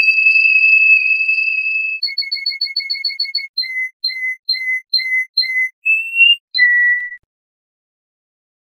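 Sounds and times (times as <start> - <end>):
canary whistling: 0.0 - 7.3.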